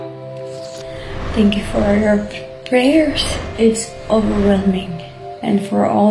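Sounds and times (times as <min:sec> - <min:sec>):
steady low hum: 0:00.6 - 0:05.5
speech: 0:01.4 - 0:06.0.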